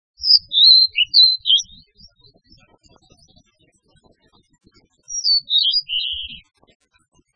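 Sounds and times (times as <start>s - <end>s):
ooruri blue-and-white flycatcher: 0.2s - 1.7s, 5.1s - 6.4s.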